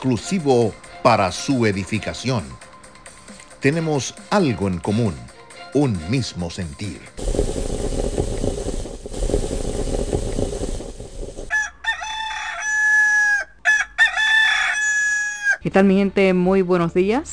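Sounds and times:
speech: 0:00.0 - 0:02.7, 0:03.6 - 0:07.6, 0:15.7 - 0:17.3
steady hissing sputtering noise: 0:07.2 - 0:11.5
rooster crowing: 0:11.4 - 0:15.6.

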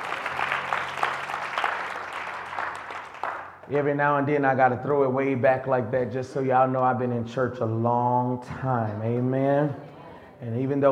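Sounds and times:
room full of people clapping in a church: 0:00.0 - 0:03.7
speech: 0:03.7 - 0:10.9.

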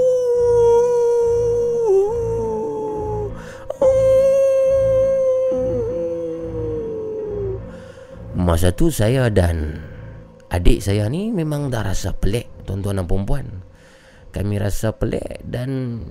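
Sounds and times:
dog howling mournfully: 0:00.0 - 0:07.7
speech: 0:08.6 - 0:09.9, 0:10.5 - 0:16.1.

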